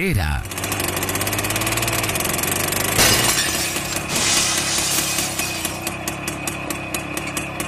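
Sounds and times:
speech: 0:00.0 - 0:00.6
heavy tractor engine idling: 0:00.0 - 0:07.6
crackling and tinkling debris: 0:03.0 - 0:05.9
tractor smashing through a shoe shop's glass window: 0:03.0 - 0:05.9.

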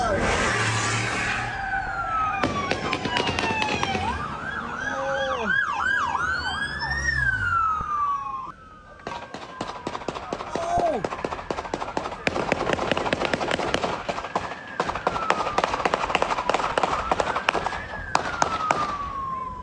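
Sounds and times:
police siren wailing: 0:00.0 - 0:19.6
rapid gunshots in police shootout in Simi Valley neighborhood: 0:02.4 - 0:04.1, 0:09.1 - 0:19.0.

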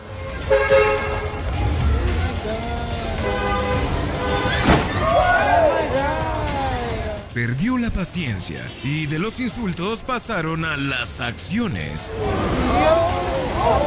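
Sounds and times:
car horns honking in New York street traffic: 0:00.0 - 0:01.7, 0:03.0 - 0:04.9, 0:08.1 - 0:10.5
busy New York street traffic noise: 0:00.0 - 0:13.8
indistinct voices: 0:01.5 - 0:13.8
speech: 0:07.4 - 0:13.8.

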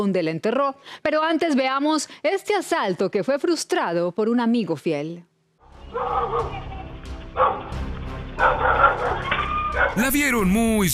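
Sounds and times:
speech: 0:00.0 - 0:05.3, 0:05.9 - 0:06.7, 0:07.4 - 0:07.8, 0:08.4 - 0:10.9
guard dog barking aggressively at attackers: 0:05.9 - 0:06.7, 0:07.4 - 0:07.7, 0:08.4 - 0:10.0.

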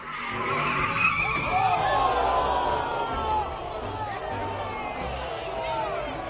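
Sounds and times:
car tires skidding at illegal street race in Los Angeles California: 0:00.0 - 0:03.0
car engine roaring at illegal street race: 0:00.0 - 0:05.4
crowd murmuring: 0:01.2 - 0:06.2.

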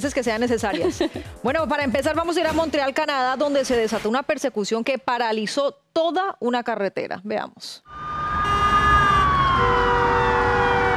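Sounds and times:
speech: 0:00.0 - 0:08.0
police car sirens wailing on a highway: 0:07.9 - 0:10.9.

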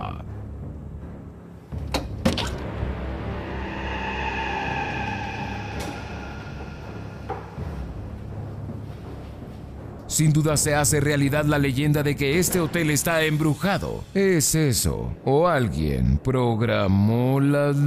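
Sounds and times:
steady low rumble: 0:02.6 - 0:10.0
door creaking open slowly in an abandoned hotel: 0:03.6 - 0:07.6
speech: 0:10.2 - 0:17.8.

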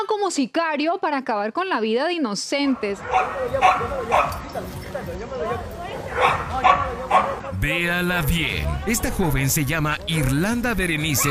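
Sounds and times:
speech: 0:00.0 - 0:11.2
Husky and hound barking during a fight: 0:02.6 - 0:07.6, 0:11.0 - 0:11.2
dogs whimpering and yelping during a fight: 0:02.9 - 0:07.5.

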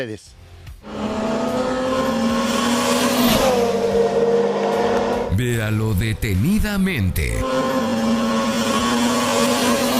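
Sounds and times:
speech: 0:00.0 - 0:01.2, 0:05.4 - 0:08.0
cars speeding past: 0:00.8 - 0:05.3, 0:07.4 - 0:09.9
car engine rapid revving: 0:00.8 - 0:09.9.

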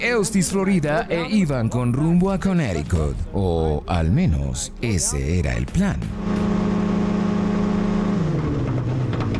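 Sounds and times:
speech: 0:00.0 - 0:06.6
small plane engine failing in flight: 0:06.1 - 0:09.3.

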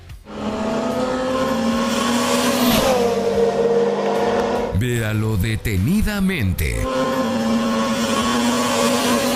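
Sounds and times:
cars speeding past on a road: 0:00.2 - 0:04.8, 0:06.9 - 0:09.3
speech: 0:05.1 - 0:07.6.

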